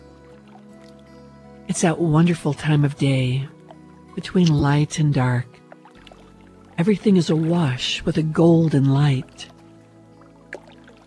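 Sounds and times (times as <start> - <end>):
canoe paddle splashing into slow river water at sunset: 0.0 - 11.0
low musical hum: 0.0 - 11.0
speech: 1.7 - 3.6, 4.2 - 5.6, 6.8 - 9.5.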